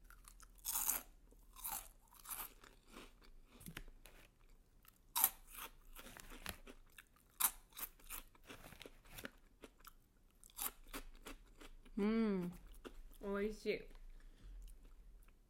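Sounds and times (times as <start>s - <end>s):
crunching of vegetable-flavoured stick snacks being eaten: 0.0s - 11.9s
person humming: 12.0s - 12.5s
speech: 12.0s - 12.6s, 13.3s - 14.0s.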